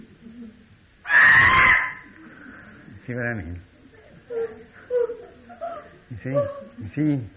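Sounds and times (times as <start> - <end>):
child screaming: 1.1 - 2.1
speech: 3.1 - 3.7, 6.1 - 7.3.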